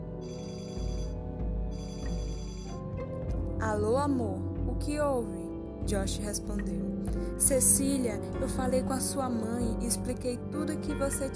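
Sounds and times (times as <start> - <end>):
telephone ringing with a high buzzy trilling ring: 0.2 - 2.8
speech: 3.6 - 11.3.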